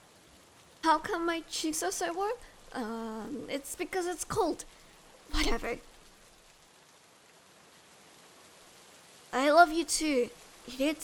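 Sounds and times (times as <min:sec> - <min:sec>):
steady rain spattering densely on a surface: 0:00.0 - 0:11.0
speech: 0:00.9 - 0:05.9, 0:09.3 - 0:11.0.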